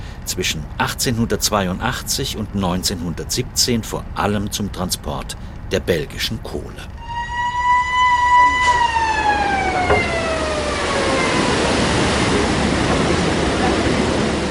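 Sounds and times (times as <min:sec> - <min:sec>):
speech: 0:00.4 - 0:07.0
siren of a 19th-century hydraulic boat lift wailing: 0:07.0 - 0:12.3
flowing water in a boat lift tank: 0:09.2 - 0:14.5.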